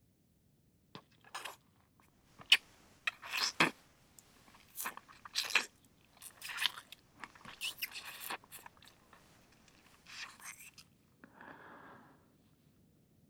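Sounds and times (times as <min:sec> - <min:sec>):
person eating a mouthful of food, crisp crunching and chewing: 0:01.0 - 0:01.6, 0:02.3 - 0:11.0.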